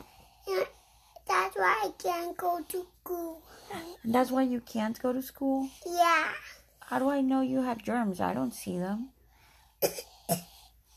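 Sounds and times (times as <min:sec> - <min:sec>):
speech: 0:01.6 - 0:09.2, 0:09.8 - 0:10.5
child coughing: 0:09.8 - 0:10.6.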